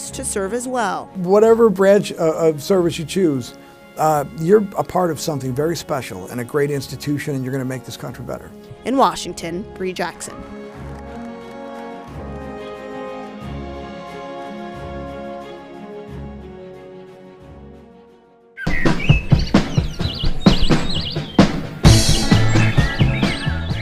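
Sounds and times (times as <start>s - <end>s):
soft sustained music: 0.0s - 21.2s
speech: 0.1s - 10.6s
birds singing outdoors during a bird-watching outing: 18.6s - 23.7s.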